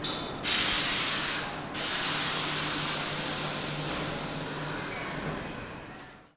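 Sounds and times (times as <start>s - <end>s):
train steam release clanks: 0.4s - 5.9s.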